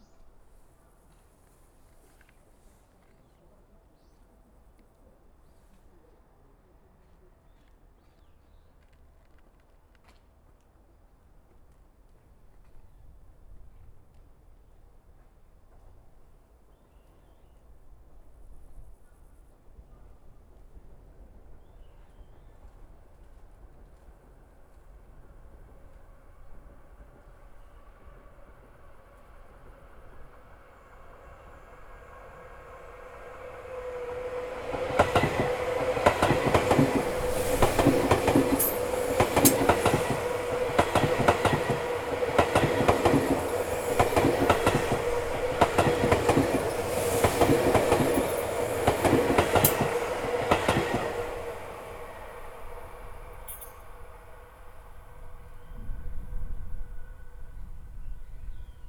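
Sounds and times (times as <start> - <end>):
train passing: 23.5 - 58.8.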